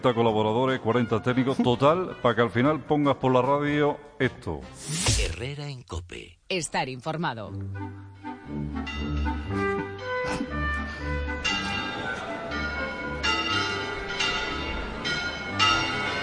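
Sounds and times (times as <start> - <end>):
speech: 0.0 - 9.7
cathedral bells pealing calling to mass: 8.8 - 10.2, 10.9 - 16.2.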